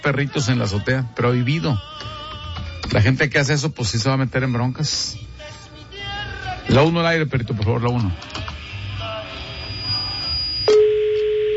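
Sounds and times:
speech: 0:00.0 - 0:02.1, 0:02.9 - 0:05.3, 0:06.7 - 0:08.4
thin high whine: 0:08.6 - 0:11.4
telephone ringing tone on a radio phone-in call: 0:09.6 - 0:11.5.

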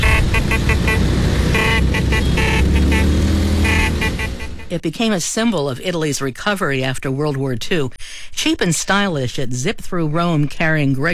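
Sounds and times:
Vespa scooter engines rumbling in Rome: 0:00.0 - 0:04.8
speech: 0:04.7 - 0:11.1.

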